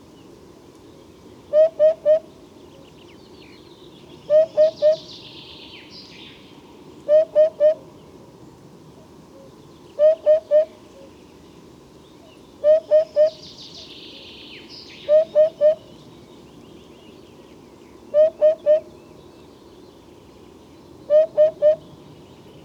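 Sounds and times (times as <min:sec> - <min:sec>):
crested hoopoe calling: 0:01.5 - 0:02.3, 0:04.3 - 0:05.1, 0:07.1 - 0:07.9, 0:09.4 - 0:11.1, 0:12.6 - 0:13.4, 0:15.0 - 0:15.9, 0:18.1 - 0:19.0, 0:21.1 - 0:21.9.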